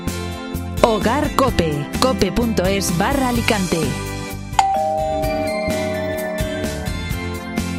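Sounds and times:
speech: 0.8 - 4.1
doorbell chime: 4.6 - 7.5
music bed with steady beats: 4.6 - 7.7.

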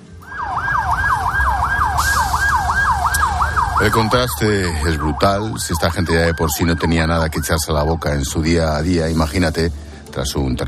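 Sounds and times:
low rumble of traffic on the road: 0.0 - 10.1
ambulance siren wailing in a fast repeating yelp on a road: 0.1 - 8.4
speech: 3.8 - 10.6.

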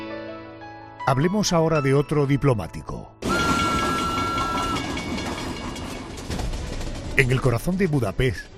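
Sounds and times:
speech: 1.1 - 3.2, 7.2 - 8.5
train rumbling on rails: 3.2 - 8.5.

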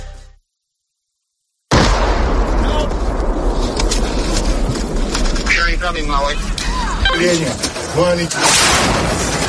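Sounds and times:
crackling gunfire: 1.7 - 6.7, 7.8 - 9.4
loud rumbling bomb blasts: 1.7 - 9.4
voices calling out: 6.1 - 8.6.

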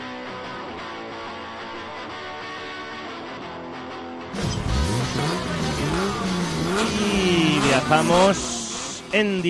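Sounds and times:
rally car engine revving: 4.4 - 9.4
speech: 7.8 - 9.4.

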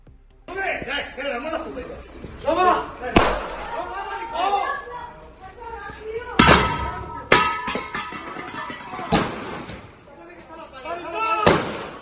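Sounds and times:
people talking and shouting excitedly: 0.5 - 11.9
butane gas cylinder falling and hitting the street: 6.4 - 9.9.

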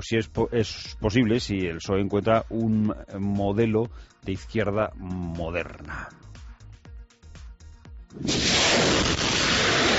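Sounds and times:
speech: 0.0 - 6.2, 8.1 - 9.4
gunfire in a war zone: 8.2 - 9.9
sharp crack: 8.2 - 9.9.

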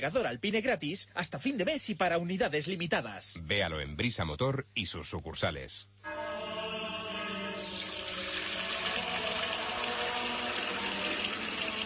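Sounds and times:
speech: 0.0 - 6.3
spring water pouring into a container: 7.6 - 11.8.

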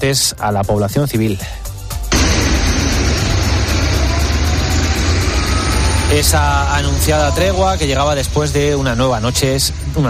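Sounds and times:
speech: 0.0 - 1.7, 6.1 - 10.0
heavy buses idling to evacuate civilians: 2.1 - 10.0.

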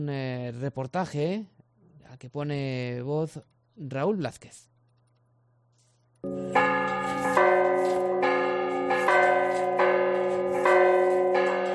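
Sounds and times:
speech: 0.0 - 4.7
church bells ringing at noon: 6.2 - 11.7.

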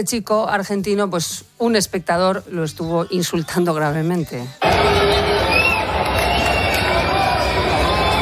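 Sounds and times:
speech: 0.0 - 5.1
large tennis crowd booing and shouting: 4.6 - 8.2.

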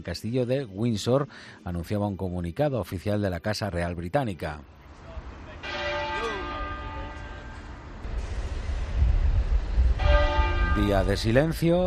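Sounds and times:
speech: 0.0 - 4.8, 10.8 - 11.8
large abbey church bell tolling: 5.6 - 7.7, 10.0 - 11.3
low rumble of outdoor noise: 7.3 - 11.8.

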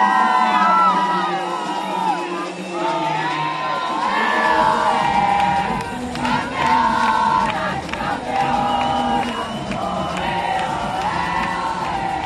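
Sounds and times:
whoops and cheers: 0.0 - 5.9, 8.3 - 12.2
group of voices chanting and shouting in victory celebration: 0.0 - 12.2.

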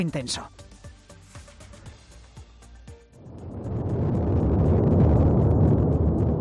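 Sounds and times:
low crackling bursts of volcanic explosions: 3.1 - 6.3
Cumbre Vieja volcano erupting: 3.2 - 6.3.

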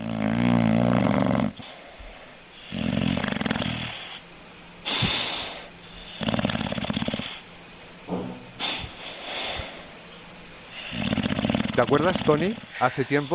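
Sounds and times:
six-month-old dog snoring: 0.0 - 4.2, 4.8 - 7.5, 10.7 - 13.3
speech: 11.8 - 13.3.

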